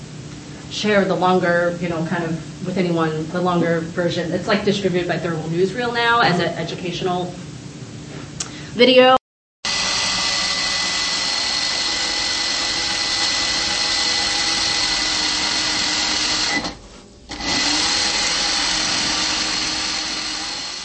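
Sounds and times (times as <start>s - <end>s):
speech: 0.7s - 7.4s, 8.8s - 9.2s
sewing machine running: 9.7s - 20.8s.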